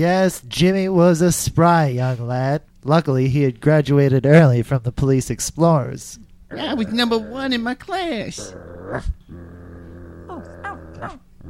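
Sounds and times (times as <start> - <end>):
speech: 0.0 - 9.5, 10.4 - 11.4
dogs growling: 6.5 - 7.6, 8.3 - 11.4.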